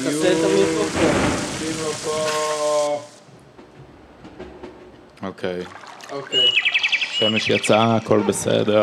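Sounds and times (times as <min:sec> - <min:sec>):
speech: 0:00.0 - 0:03.1, 0:05.2 - 0:08.8
heavy rain pattering on a hard surface: 0:00.0 - 0:03.3
faint high chirps: 0:06.2 - 0:08.3.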